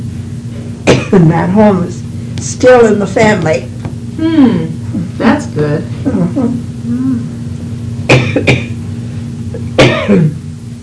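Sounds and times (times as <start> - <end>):
steady low hum: 0.0 - 10.8
person coughing harshly: 0.9 - 1.2, 8.1 - 8.8, 9.6 - 10.4
speech: 1.1 - 7.4, 8.1 - 8.7, 9.8 - 10.4
throat clearing: 8.1 - 8.8, 9.6 - 10.4.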